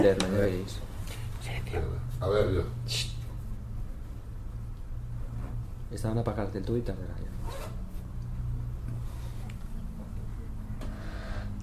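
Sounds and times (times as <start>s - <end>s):
speech: 0.0s - 3.1s, 5.9s - 7.8s
steady low mechanical hum: 0.0s - 11.6s
zipper being pulled: 7.4s - 8.0s.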